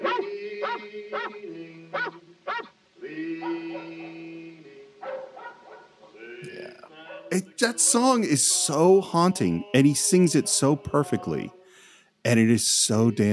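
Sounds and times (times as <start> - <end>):
dog barking in short sharp bursts: 0.0 - 2.8, 3.4 - 4.2, 5.0 - 6.2, 7.0 - 7.3
speech: 7.4 - 11.6, 12.2 - 13.3.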